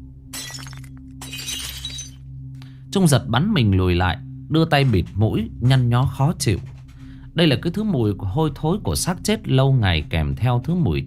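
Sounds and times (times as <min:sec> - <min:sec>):
jar dropped and shattering at night: 0:00.3 - 0:02.2
speech: 0:02.9 - 0:06.8, 0:07.4 - 0:11.0.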